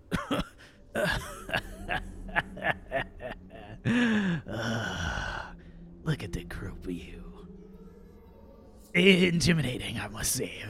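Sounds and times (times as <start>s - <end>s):
man acting out a fit of coughing: 0.1s - 2.0s
laughter: 1.0s - 4.3s
man drawn-out groaning breath: 3.2s - 5.5s
speech: 9.0s - 10.6s.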